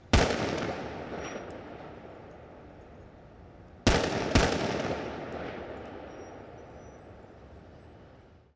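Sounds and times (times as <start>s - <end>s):
pistol shot: 0.1s - 2.5s, 3.9s - 6.9s.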